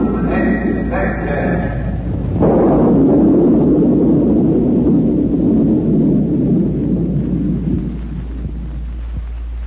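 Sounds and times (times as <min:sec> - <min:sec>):
deep roll of thunder: 0:00.0 - 0:09.6
roaring wind: 0:00.0 - 0:09.6.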